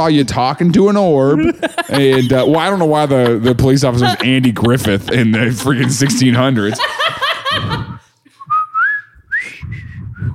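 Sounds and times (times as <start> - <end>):
speech: 0.0 - 7.9
bursts of laughter: 1.3 - 8.4
person whistling a short wavering tune: 8.4 - 10.3.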